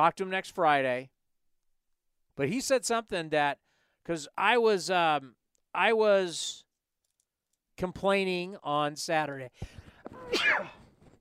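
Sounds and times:
speech: 0:00.0 - 0:01.2, 0:02.4 - 0:06.6, 0:07.8 - 0:10.8
person sneezing: 0:10.1 - 0:10.8.

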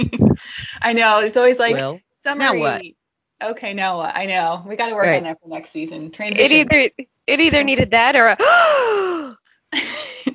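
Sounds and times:
speech: 0:00.8 - 0:10.3
person letting out exaggerated breathy gasps: 0:08.4 - 0:09.4.

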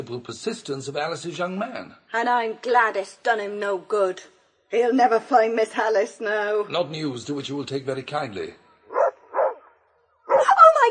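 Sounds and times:
speech: 0:00.0 - 0:08.6
huge mastiff barking: 0:08.9 - 0:10.6.

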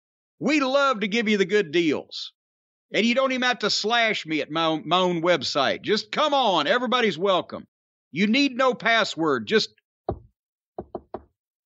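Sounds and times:
speech: 0:00.4 - 0:10.2
knocking on a door: 0:10.1 - 0:11.4.

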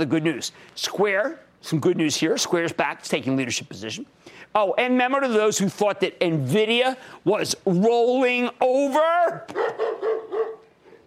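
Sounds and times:
speech: 0:00.0 - 0:09.9
dog barking: 0:09.5 - 0:11.0.

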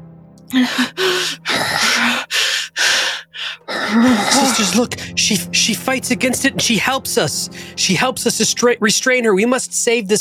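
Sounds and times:
speech: 0:00.5 - 0:02.4, 0:04.6 - 0:10.1
voice imitating a woman panting: 0:00.5 - 0:05.2.

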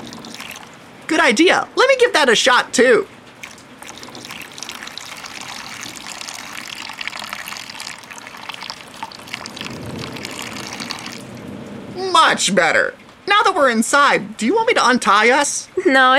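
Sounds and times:
water squeezed out of wet hair splattering and dribbling: 0:00.0 - 0:00.8, 0:03.4 - 0:11.4
speech: 0:01.1 - 0:03.2, 0:12.4 - 0:16.1.

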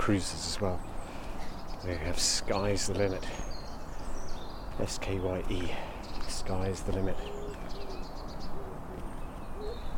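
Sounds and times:
speech: 0:00.0 - 0:00.9, 0:01.8 - 0:03.5, 0:04.8 - 0:07.4
faint high bird chirps: 0:00.8 - 0:09.9
dove or pigeon cooing: 0:07.1 - 0:09.9.

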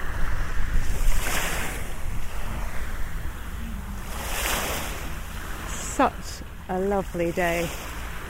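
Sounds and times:
gentle sea waves lapping at the shore: 0:00.0 - 0:08.2
light wind: 0:00.0 - 0:08.2
speech: 0:06.0 - 0:07.8.

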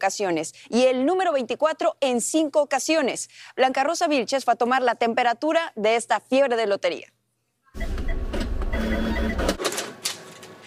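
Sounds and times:
speech: 0:00.0 - 0:07.2
lottery ticket machine printing tickets: 0:07.8 - 0:10.4.

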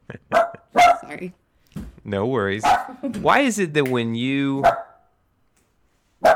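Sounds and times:
dog barking: 0:00.3 - 0:01.1, 0:02.6 - 0:03.0, 0:04.6 - 0:05.1, 0:06.2 - 0:06.3
speech: 0:01.1 - 0:01.4, 0:02.0 - 0:04.8.

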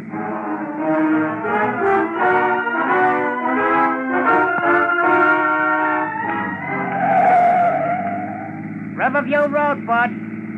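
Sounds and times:
car brakes squealing: 0:00.0 - 0:10.5
car engine humming while driving by: 0:00.0 - 0:10.5
speech: 0:09.3 - 0:10.3.

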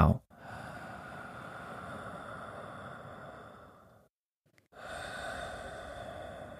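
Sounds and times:
slow deep belly breathing: 0:00.3 - 0:06.5.

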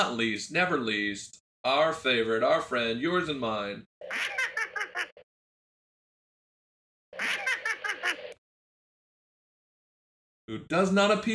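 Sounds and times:
speech: 0:00.0 - 0:04.4, 0:10.5 - 0:11.3
short high-pitched cartoonish character giggle: 0:04.0 - 0:05.2, 0:07.2 - 0:08.4.

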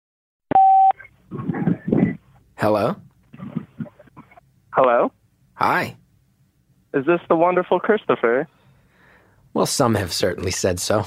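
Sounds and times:
short loud electronic telephone beep: 0:00.5 - 0:01.1
speech: 0:02.6 - 0:03.1, 0:04.8 - 0:06.0, 0:06.9 - 0:08.6, 0:09.6 - 0:11.0.

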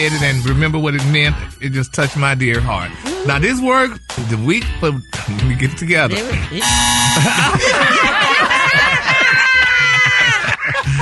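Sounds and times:
speech: 0:00.0 - 0:09.9
loud harsh electronic buzzer: 0:06.6 - 0:07.5
laughter: 0:07.2 - 0:11.0
lively overlapping voices: 0:07.6 - 0:10.5.

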